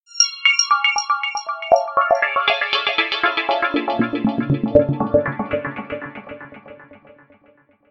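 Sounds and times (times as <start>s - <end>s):
arpeggio sequence: 0.7s - 7.0s.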